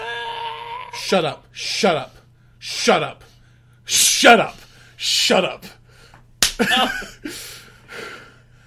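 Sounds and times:
speech: 1.1 - 3.3, 3.9 - 5.8, 6.6 - 8.2
sharp slap: 6.4 - 6.7.

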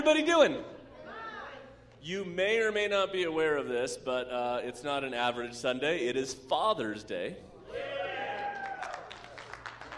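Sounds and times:
speech: 0.0 - 0.8, 2.0 - 8.0
church audience cheering and whooping: 7.7 - 9.5
scattered clapping: 8.4 - 9.9.

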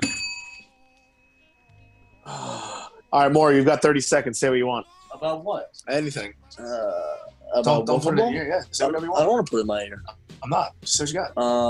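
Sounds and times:
bell struck and ringing: 0.0 - 4.2
speech: 3.1 - 11.6.

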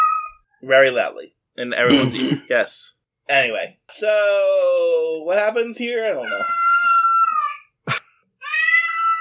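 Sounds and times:
cat yowling loudly: 0.0 - 0.4, 6.2 - 7.7, 8.4 - 9.2
speech: 0.6 - 6.6.

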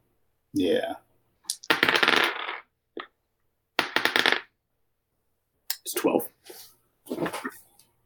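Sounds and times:
speech: 0.5 - 1.0, 5.9 - 7.3
three six-sided dice clattering across a hard surface in a game: 1.5 - 2.7.

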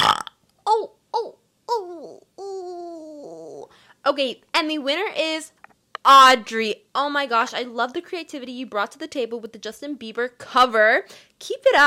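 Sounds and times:
person burping: 0.0 - 0.8
speech: 4.1 - 11.8.

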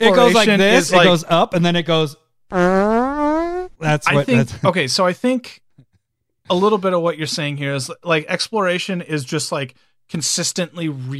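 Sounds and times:
speech: 0.0 - 5.6, 6.5 - 11.1
buzzy fart sound effect sliding upward in pitch: 2.5 - 3.8.

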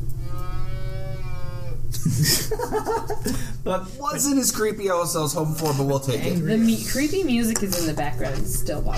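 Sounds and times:
long wailing cow moo: 0.2 - 1.9
laughter: 1.9 - 3.9
speech: 2.0 - 8.9.

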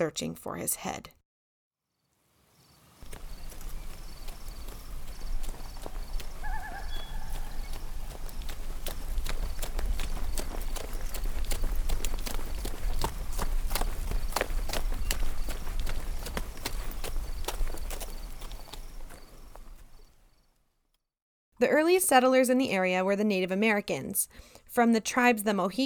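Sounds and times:
speech: 0.0 - 1.2, 21.6 - 25.8
horse hooves clip-clopping on a hard road: 3.0 - 20.2.

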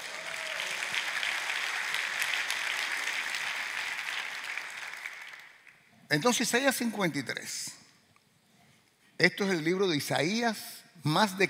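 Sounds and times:
congregation applauding: 0.0 - 5.8
speech: 6.1 - 7.8, 9.2 - 11.4.

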